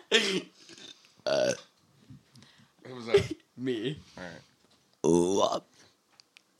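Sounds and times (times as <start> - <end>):
speech: 0.1 - 0.6, 1.2 - 1.7, 3.0 - 5.7
loud burps: 1.2 - 1.7.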